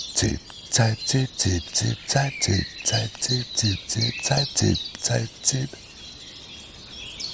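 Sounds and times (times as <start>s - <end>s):
common chiffchaff singing bright high two-note phrases: 0.0s - 5.8s
speech: 0.0s - 5.9s.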